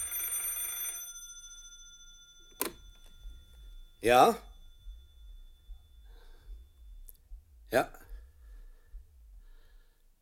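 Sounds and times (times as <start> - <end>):
telephone ringing: 0.0 - 6.8
speech: 4.0 - 4.5, 7.7 - 8.0.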